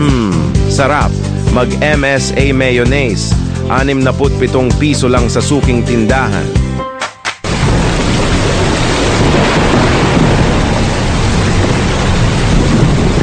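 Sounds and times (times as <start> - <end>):
speech: 0.8 - 6.6
deep low thunder rumbling: 7.4 - 13.2
heavy rain during a downpour: 7.4 - 13.2.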